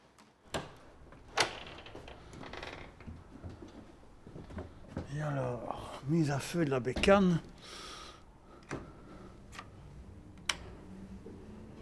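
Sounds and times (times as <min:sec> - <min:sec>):
door rattling and shuffling: 0:00.5 - 0:03.1
speech: 0:05.2 - 0:07.8.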